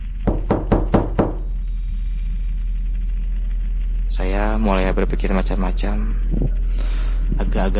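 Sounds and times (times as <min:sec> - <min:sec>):
knocking: 0:00.2 - 0:01.4
faint steady high-pitched tone: 0:01.3 - 0:04.6
speech: 0:04.1 - 0:07.7.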